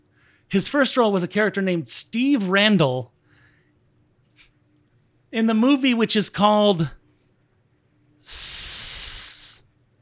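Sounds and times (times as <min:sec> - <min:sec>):
speech: 0:00.5 - 0:03.2, 0:05.3 - 0:07.0, 0:08.2 - 0:08.6
voice hissing a long steady sss: 0:08.3 - 0:09.6.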